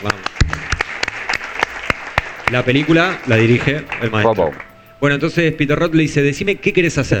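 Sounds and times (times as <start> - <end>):
speech: 0.0 - 0.3, 2.5 - 7.1
scattered applause from a small audience: 0.0 - 4.7.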